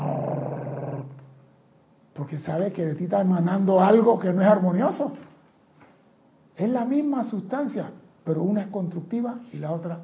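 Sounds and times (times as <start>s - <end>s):
person imitating a dog's growl: 0.0s - 1.2s
speech: 2.2s - 5.3s, 6.6s - 10.0s.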